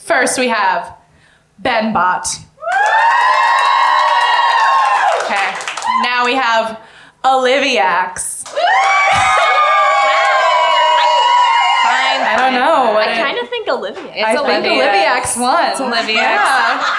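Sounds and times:
speech: 0.2s - 1.0s, 1.6s - 3.1s, 6.0s - 9.3s, 12.3s - 16.9s
live audience screaming and cheering to vote by applause in a contest: 2.6s - 6.0s, 8.5s - 12.5s
laughter: 15.8s - 16.9s.

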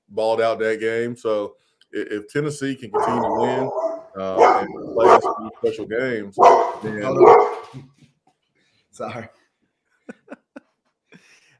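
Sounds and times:
speech: 0.1s - 8.1s, 9.0s - 9.4s
little dog barking: 3.0s - 5.6s, 6.4s - 7.7s.

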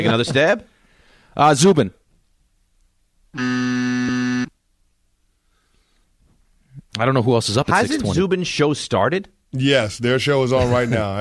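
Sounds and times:
speech: 0.0s - 0.7s, 1.4s - 2.0s, 3.3s - 3.8s, 7.0s - 11.2s
game show wrong-answer buzzer: 3.4s - 4.5s.

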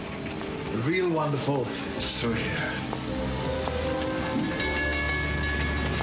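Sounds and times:
train rumbling on rails: 0.0s - 6.0s
speech: 0.8s - 3.8s
metallic whines and rattles of a train: 2.7s - 6.0s.

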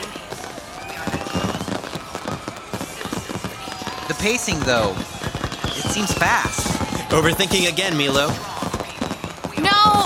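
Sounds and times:
fireworks popping and crackling in the night sky: 0.0s - 10.0s
speech: 4.1s - 5.1s, 5.8s - 8.5s.

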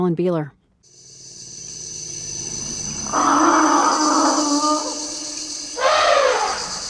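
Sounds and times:
speech: 0.0s - 1.0s
high hum of insects: 0.8s - 6.8s
family of elephants giving deep groaning calls at a marsh: 3.0s - 6.8s.

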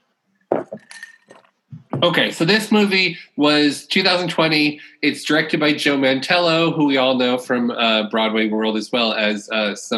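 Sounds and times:
glasses clinking in a toast: 0.4s - 1.6s
speech: 2.0s - 9.9s.

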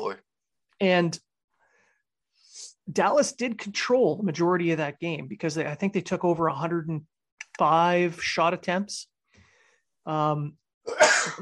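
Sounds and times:
speech: 0.0s - 1.2s, 2.9s - 9.1s, 10.0s - 11.3s
person sneezing: 10.9s - 11.3s.

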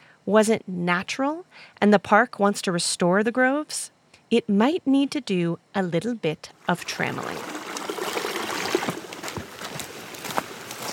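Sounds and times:
speech: 0.3s - 7.6s
creek water babbling and trickling: 6.9s - 10.9s
small splashes and gurgles of creek water: 7.1s - 9.6s.

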